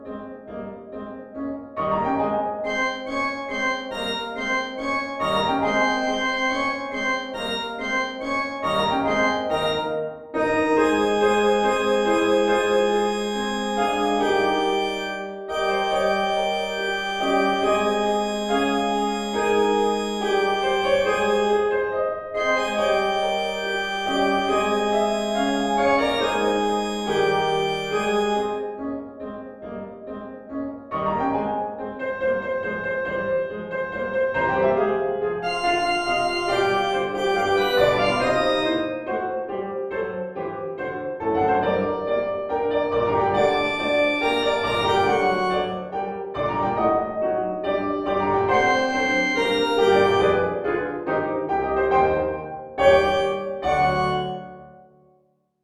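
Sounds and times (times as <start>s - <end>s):
piano: 0.0s - 55.2s.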